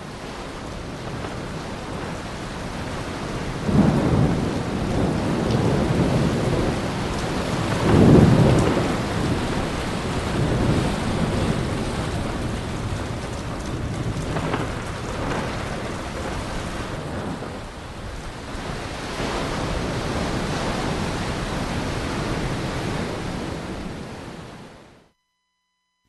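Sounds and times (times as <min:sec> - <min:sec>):
torrential rain: 0:00.0 - 0:24.6.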